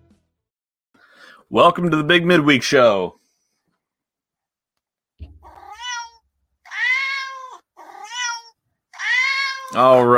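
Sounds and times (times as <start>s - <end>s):
speech: 1.5s - 3.2s, 9.8s - 10.1s
cats meowing: 5.4s - 10.1s.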